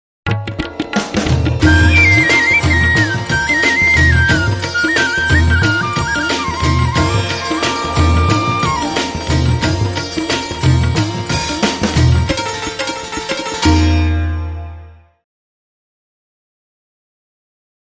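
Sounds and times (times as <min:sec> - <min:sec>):
Hindi beats music: 0:00.3 - 0:14.6.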